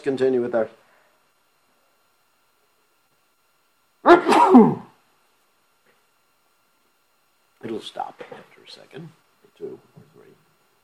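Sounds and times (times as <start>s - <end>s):
speech: 0.0s - 0.8s, 4.1s - 4.9s, 7.7s - 10.4s
person sneezing: 4.0s - 5.0s.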